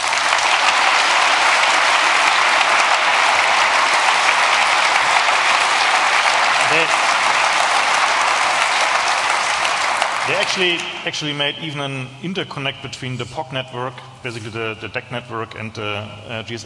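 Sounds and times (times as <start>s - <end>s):
large audience applause: 0.0s - 11.4s
speech: 10.4s - 16.6s.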